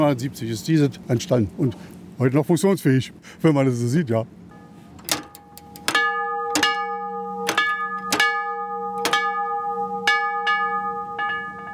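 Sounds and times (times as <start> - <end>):
speech: 0.0 - 4.4
cast-iron bell struck by a spindle mechanism: 4.5 - 11.7.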